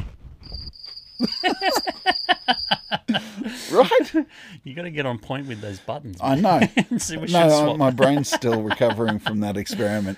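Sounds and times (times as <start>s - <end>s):
crickets chirping: 0.4s - 3.2s
speech: 1.2s - 2.7s, 3.4s - 10.1s
laughter: 1.2s - 4.3s, 6.2s - 10.1s.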